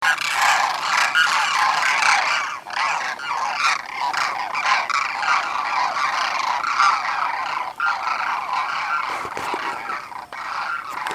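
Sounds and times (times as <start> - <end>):
demoiselle crane Grus virgo: 0.0 - 11.1.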